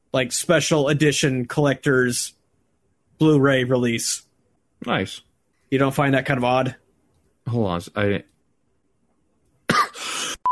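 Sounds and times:
speech: 0.1s - 2.4s, 3.2s - 6.8s, 7.4s - 8.3s
person coughing: 9.7s - 10.4s
throat clearing: 9.7s - 10.4s.

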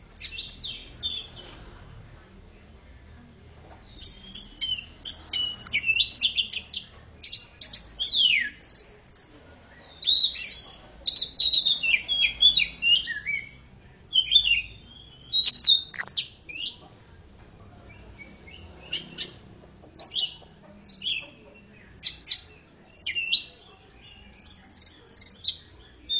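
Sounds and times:
Oriental magpie-robin singing bright varied whistled phrases: 0.2s - 1.4s, 3.9s - 16.8s, 20.0s - 21.4s, 22.0s - 23.6s, 24.2s - 26.1s.

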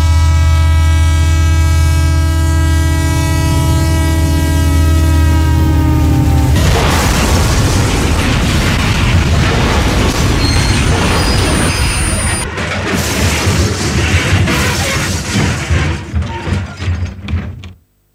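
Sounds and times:
train horn-like harmonic tone: 0.0s - 6.6s
loud dense crash and roar: 5.9s - 16.3s.

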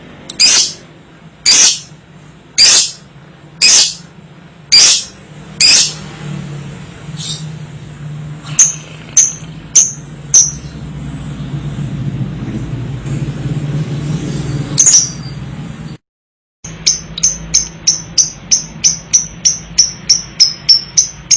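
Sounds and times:
lovebird chirps: 0.3s - 0.8s, 1.4s - 1.9s, 2.6s - 4.0s, 4.7s - 6.0s, 8.5s - 10.8s, 14.8s - 15.4s, 16.7s - 21.3s
low rumbling: 5.2s - 16.0s.

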